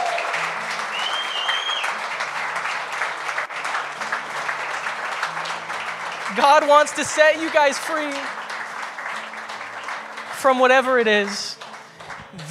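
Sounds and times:
sizable crowd applause at a prayer gathering: 0:00.0 - 0:12.4
faint whistle: 0:00.9 - 0:02.0
speech: 0:06.4 - 0:08.4, 0:10.4 - 0:11.6.

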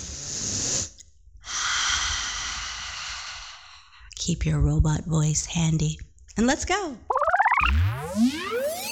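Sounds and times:
deep breath: 0:00.0 - 0:04.1
speech: 0:04.2 - 0:08.8.

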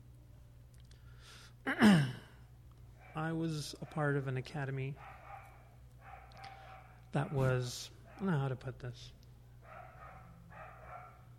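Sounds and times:
speech: 0:01.6 - 0:02.0, 0:03.3 - 0:05.2, 0:07.1 - 0:09.2
dog barking: 0:03.0 - 0:04.2, 0:05.0 - 0:08.4, 0:09.6 - 0:11.3.

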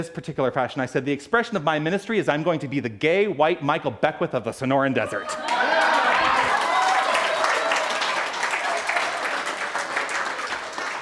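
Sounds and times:
speech: 0:00.0 - 0:05.8
people cheering: 0:05.0 - 0:11.0
room full of people applauding: 0:05.3 - 0:11.0.

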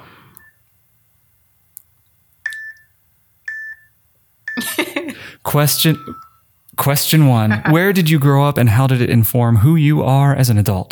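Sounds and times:
short electronic timer beeps marking a time limit for answering questions: 0:02.4 - 0:04.6, 0:05.7 - 0:06.4, 0:07.5 - 0:07.8
laughter: 0:04.6 - 0:05.3
quiet low hum: 0:04.6 - 0:10.1
speech: 0:05.4 - 0:10.8.

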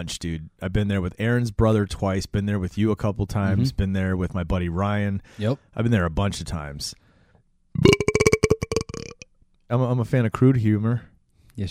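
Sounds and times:
speech: 0:00.0 - 0:07.0, 0:07.8 - 0:08.1, 0:09.7 - 0:11.7
loud drawn-out burp: 0:07.8 - 0:09.2.

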